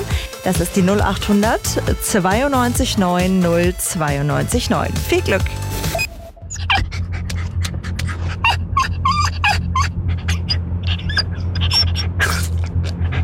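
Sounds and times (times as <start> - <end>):
speech: 0.4 - 5.9
steady low hum: 5.6 - 13.2
dog panting and whimpering in distress from heatstroke: 6.0 - 13.2.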